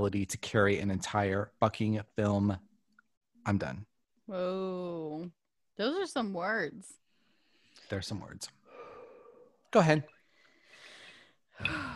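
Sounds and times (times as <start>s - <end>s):
speech: 0.0s - 2.7s, 3.4s - 7.0s, 7.9s - 8.6s, 9.7s - 10.2s, 11.6s - 11.9s
breathing: 7.1s - 8.0s, 8.6s - 9.6s, 10.2s - 11.9s
heavier sigh-like breath with a rougher edge: 10.7s - 11.9s.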